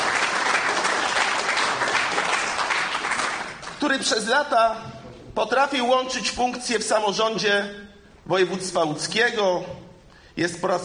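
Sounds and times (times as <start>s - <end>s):
audience applause at a Polish local-government gathering: 0.0s - 3.8s
speech: 3.8s - 9.8s, 10.4s - 10.8s.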